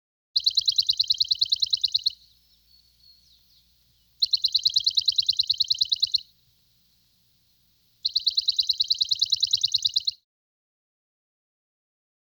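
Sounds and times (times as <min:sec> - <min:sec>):
sparrow singing in rapid high chirping: 0:00.4 - 0:10.2.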